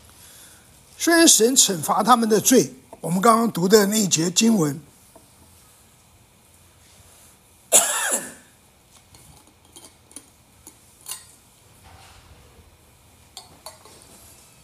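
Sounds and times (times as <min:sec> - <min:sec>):
speech: 0:01.0 - 0:04.9
harsh cough from an itchy throat: 0:07.7 - 0:08.5.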